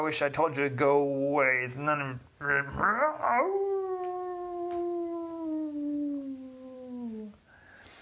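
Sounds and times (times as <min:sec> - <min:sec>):
speech: 0:00.0 - 0:03.7
werewolf howling: 0:03.1 - 0:07.3.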